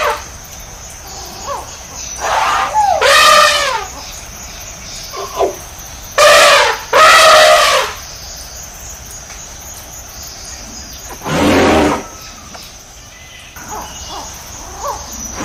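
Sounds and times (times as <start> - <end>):
faint steady hiss: 0.0 - 15.4
tiger roaring: 11.2 - 12.2, 15.3 - 15.4.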